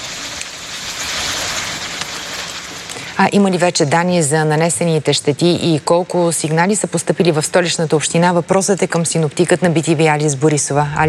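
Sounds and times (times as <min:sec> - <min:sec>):
heavy rain during a powerful storm in Sofia: 0:00.0 - 0:03.2
speech: 0:03.2 - 0:11.0
strong wind gusts during a powerful storm in Sofia: 0:10.8 - 0:11.0.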